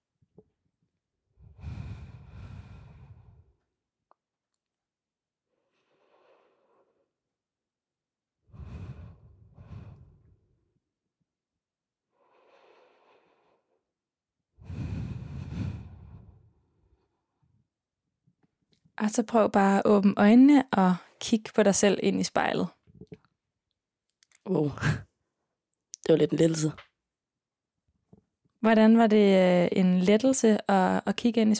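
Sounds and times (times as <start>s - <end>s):
deep breaths during a guided relaxation exercise: 1.4s - 3.7s, 5.5s - 7.2s, 8.5s - 10.7s, 12.1s - 13.9s, 14.6s - 17.5s
speech: 19.0s - 22.8s, 24.5s - 25.1s, 26.1s - 26.9s, 28.6s - 31.5s.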